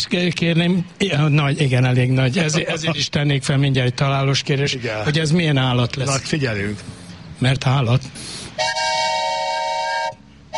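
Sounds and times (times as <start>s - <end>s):
speech: 0.0s - 8.8s
train horn signalling a train's arrival: 8.6s - 10.5s.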